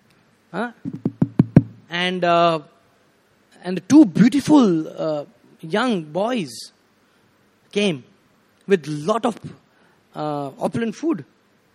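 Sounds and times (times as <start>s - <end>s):
speech: 0.5s - 1.1s, 1.9s - 2.7s, 3.6s - 6.8s, 7.7s - 8.1s, 8.7s - 11.3s
quick firm knocks on a door: 0.9s - 1.8s.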